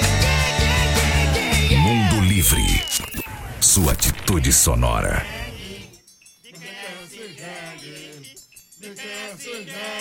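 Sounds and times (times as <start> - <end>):
donkey braying: 0.2 - 3.6
speech: 3.8 - 5.4.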